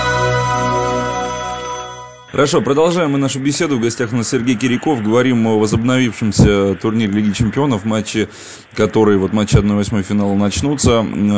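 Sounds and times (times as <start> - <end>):
electronic telephone ringtone for an incoming call: 0.0 - 2.6
speech: 2.4 - 11.3.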